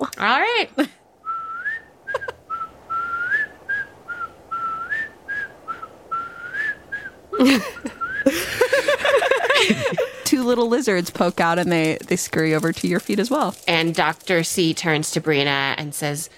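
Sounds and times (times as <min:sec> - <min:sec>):
speech: 0:00.2 - 0:01.0, 0:07.4 - 0:08.4, 0:09.6 - 0:16.3
person whistling a long wavering tune: 0:01.2 - 0:07.2, 0:07.9 - 0:08.3
laughter: 0:02.1 - 0:02.4, 0:07.3 - 0:10.3.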